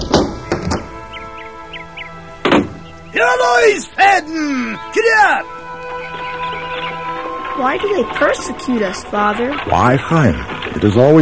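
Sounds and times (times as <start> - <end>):
wooden door being opened with dull thunks: 0.0 - 1.2, 2.4 - 2.9
speech: 3.1 - 5.6, 7.6 - 11.1.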